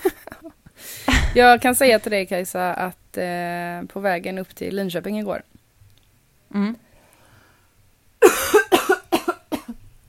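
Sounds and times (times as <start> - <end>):
short throaty vocal sound: 1.1 - 1.6
speech: 1.3 - 5.5, 6.5 - 6.8
loud fit of harsh coughs trailing into quieter hacks: 8.2 - 9.8.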